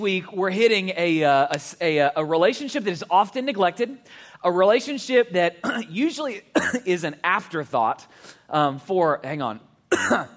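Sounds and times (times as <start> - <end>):
speech: 0.0 - 10.3
person clearing throat: 5.6 - 5.9, 6.6 - 6.9, 9.9 - 10.3
person coughing with something caught in the throat: 5.6 - 6.9, 9.9 - 10.3.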